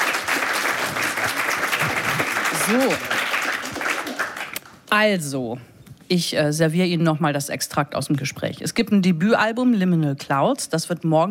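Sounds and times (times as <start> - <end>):
audience applause at a live event: 0.0 - 4.8
speech: 2.7 - 3.2, 4.9 - 11.2.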